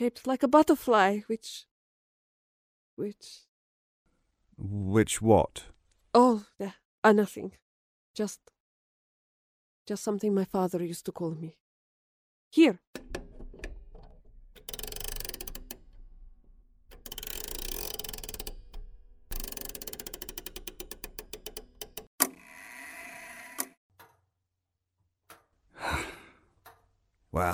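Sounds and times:
speech: 0.0s - 1.7s, 3.0s - 3.5s, 4.6s - 7.6s, 8.2s - 8.5s, 9.9s - 11.6s, 12.5s - 13.1s, 27.4s - 27.5s
clock mechanism clicking and ticking: 13.0s - 22.1s
soft breathy sigh: 25.8s - 26.5s.

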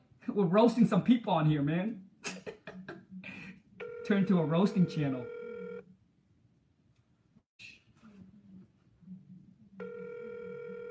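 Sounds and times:
speech: 0.4s - 2.6s, 4.1s - 5.4s
outgoing phone call ringback tone: 3.8s - 5.8s, 9.8s - 10.8s.

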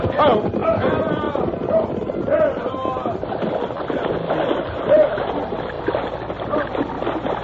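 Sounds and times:
troopers' horses galloping and splashing across a river: 0.0s - 7.4s
indistinct shouting voices: 0.2s - 3.0s.

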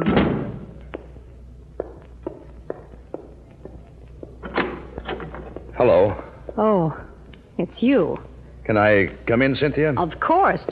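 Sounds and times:
door banging shut with a solid thud: 0.0s - 0.7s, 4.4s - 5.4s
light evenly spaced footsteps: 0.7s - 7.5s, 10.6s - 10.7s
speech: 5.8s - 7.0s, 7.6s - 10.7s.

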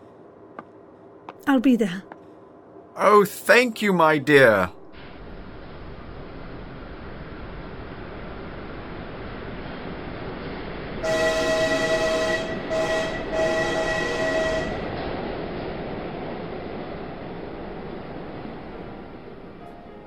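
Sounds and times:
train pulling away from a station rumbling: 0.0s - 20.0s
speech: 1.4s - 2.1s, 3.0s - 4.8s
loud train whistle: 11.0s - 14.9s.

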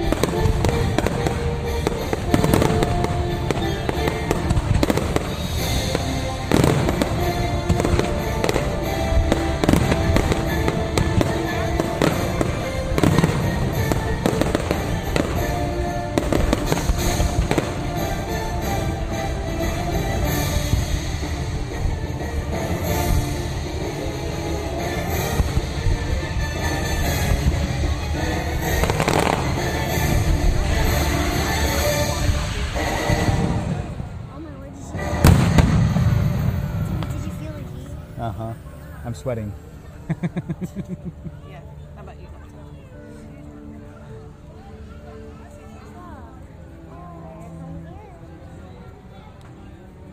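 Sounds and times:
theme park fireworks show explosions: 0.0s - 38.2s
speech: 39.2s - 39.6s
laughter: 39.9s - 41.5s.

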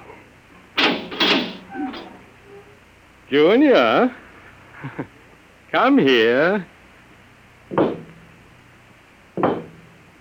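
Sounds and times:
door creaking as it swings: 0.8s - 2.7s
speech: 3.3s - 4.2s, 4.8s - 6.7s.

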